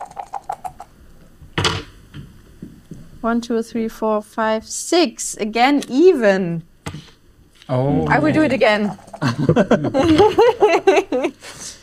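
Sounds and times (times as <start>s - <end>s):
dice rattling during a game: 0.0s - 0.9s, 8.8s - 9.2s
speech: 3.2s - 6.7s, 7.7s - 11.8s
laughter: 9.2s - 11.4s.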